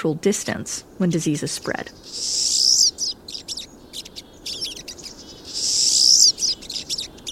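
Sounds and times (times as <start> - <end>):
speech: 0.0 - 3.1
low steady hiss: 0.0 - 7.3
pine siskin flock calling: 1.9 - 7.3.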